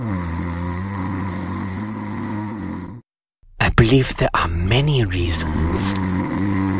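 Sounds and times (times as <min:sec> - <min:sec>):
loud human snoring: 0:00.0 - 0:03.1, 0:05.2 - 0:06.7
speech: 0:03.8 - 0:06.5.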